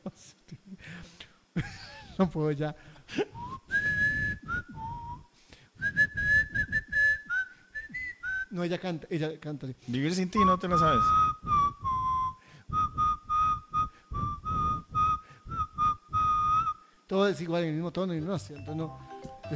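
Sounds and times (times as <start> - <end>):
speech: 1.6 - 3.3, 8.6 - 11.4, 17.1 - 19.5
person whistling a song melody: 3.4 - 8.5, 10.4 - 16.8.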